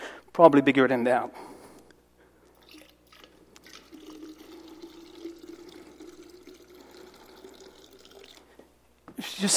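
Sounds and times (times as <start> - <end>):
speech: 0.4 - 1.5
water pouring from a pitcher into a container: 2.6 - 8.6.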